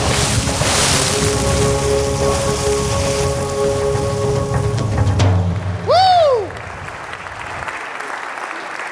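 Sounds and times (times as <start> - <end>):
steady rushing water from a cannonball jump splash: 0.0 - 5.9.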